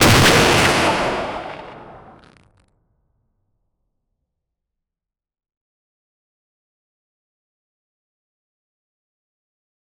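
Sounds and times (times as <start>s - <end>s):
grenade launcher: 0.0s - 2.4s.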